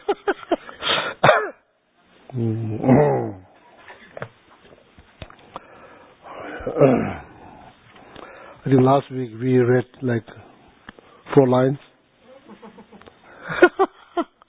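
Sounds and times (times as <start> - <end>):
people coughing at an evening gathering: 1.1 - 1.6
speech: 2.3 - 3.1, 8.7 - 10.5, 11.4 - 11.9
people clearing their throats at an evening gathering: 2.3 - 3.5, 6.5 - 7.3.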